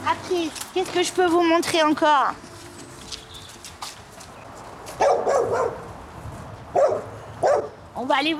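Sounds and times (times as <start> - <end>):
speech: 0.3 - 2.5, 8.0 - 8.3
dog barking at a sheep farm in the Parc de la Courneuve near Paris France: 5.0 - 5.8, 6.7 - 7.8.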